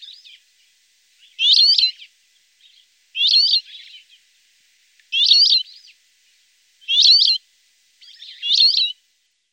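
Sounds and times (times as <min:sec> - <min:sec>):
rock sparrow nasal buzzy chirps: 0:01.2 - 0:04.2, 0:05.1 - 0:05.9, 0:06.8 - 0:07.4, 0:08.0 - 0:08.9.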